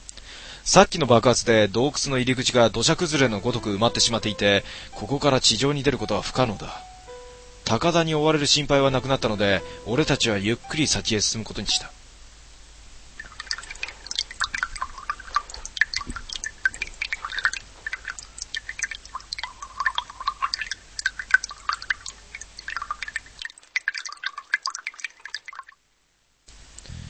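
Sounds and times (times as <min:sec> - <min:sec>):
speech: 0:00.7 - 0:06.9, 0:07.7 - 0:12.0
water dripping in a limestone cave: 0:01.8 - 0:06.8, 0:08.6 - 0:11.9, 0:13.2 - 0:25.9.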